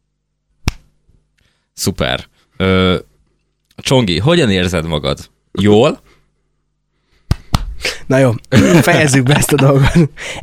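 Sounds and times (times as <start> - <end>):
hand clap answering yes-or-no questions: 0.6 - 0.9, 7.2 - 7.8
speech: 1.8 - 3.0, 3.9 - 6.2, 8.1 - 10.4
laughter: 8.5 - 10.2.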